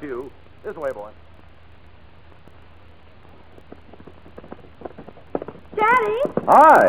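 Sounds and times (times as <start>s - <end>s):
speech: 0.0s - 1.3s, 5.8s - 6.8s
low rumble: 0.0s - 6.8s
horse hooves trotting pulling a sulky: 2.3s - 6.8s.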